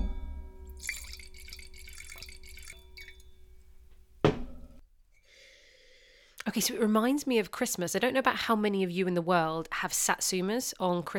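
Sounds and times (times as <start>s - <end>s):
wine pouring into a glass: 0.7s - 3.6s
glass clink: 0.7s - 3.7s
speech: 6.5s - 11.1s.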